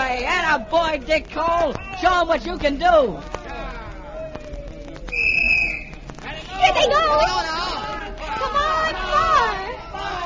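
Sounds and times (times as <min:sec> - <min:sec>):
noisy crowd: 0:00.0 - 0:10.2
spectators shouting and chattering: 0:00.0 - 0:10.2
speech: 0:00.5 - 0:03.4, 0:06.6 - 0:07.6
referee's whistle blast at basketball game: 0:05.1 - 0:06.0.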